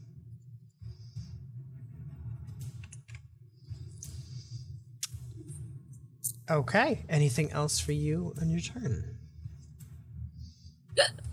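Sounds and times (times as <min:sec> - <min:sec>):
speech: 0:06.5 - 0:09.2
player hiccuping during a tabletop role-playing game session: 0:11.0 - 0:11.3.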